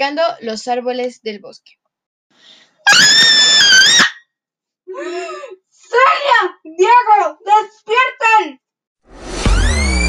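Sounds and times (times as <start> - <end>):
speech: 0.0 - 4.1, 5.0 - 9.2
loud high-pitched scream at the edge of a forest and a campsite: 2.8 - 4.3.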